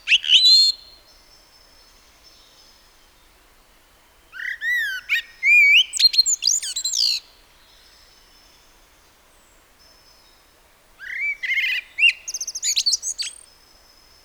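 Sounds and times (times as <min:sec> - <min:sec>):
Turdus merula common blackbird song: 0:00.0 - 0:00.9, 0:04.6 - 0:07.2, 0:11.2 - 0:13.4.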